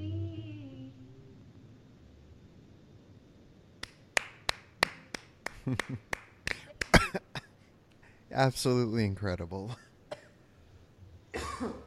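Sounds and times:
quiet room noise: 0.0s - 11.8s
speech: 5.6s - 6.2s, 8.4s - 9.9s, 11.6s - 11.8s
person with a cold coughing harshly: 6.9s - 7.5s, 9.7s - 10.4s, 11.3s - 11.8s.

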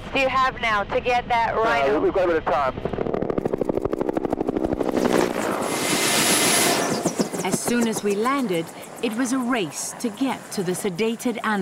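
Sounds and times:
speech: 0.1s - 3.0s, 7.5s - 11.5s
Huey helicopter in flight during a rhino game capture: 2.8s - 11.5s.

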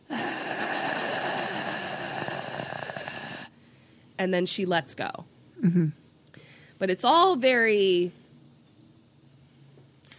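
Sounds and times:
person imitating a strangled gasp for breath: 0.0s - 3.6s
speech: 4.2s - 6.0s, 6.8s - 8.2s.

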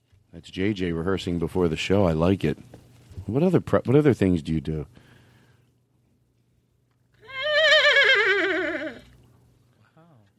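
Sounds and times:
speech: 0.4s - 5.0s
horse neighing in a long wavering whinny: 7.2s - 9.2s.

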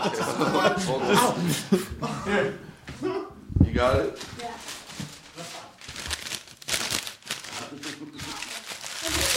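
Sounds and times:
speech: 0.0s - 2.6s
laughter: 0.0s - 3.3s
paper being folded into an origami crane: 4.0s - 9.3s.

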